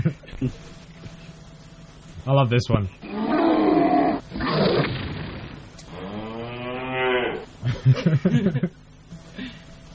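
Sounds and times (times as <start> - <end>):
speech: 0.4 - 0.8, 2.3 - 3.1, 7.8 - 8.8
cow mooing: 3.0 - 4.6, 5.9 - 7.5
laughter: 7.6 - 8.8.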